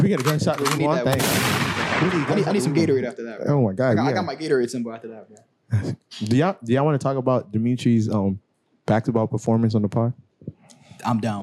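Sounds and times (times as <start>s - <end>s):
speech: 0.0s - 11.4s
gunshot sound effect with tail: 1.1s - 2.5s
laughter: 2.0s - 4.7s.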